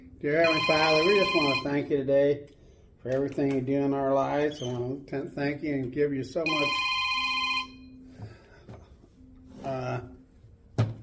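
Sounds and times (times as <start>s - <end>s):
faint steady hum: 0.0s - 11.0s
speech: 0.2s - 6.9s
telephone ringing in short buzzy bursts: 0.3s - 1.9s, 6.4s - 8.0s.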